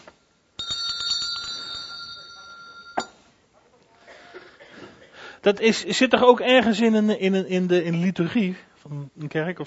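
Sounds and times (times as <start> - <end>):
small hand bell being struck and ringing: 0.6 - 3.2
speech: 5.4 - 9.6.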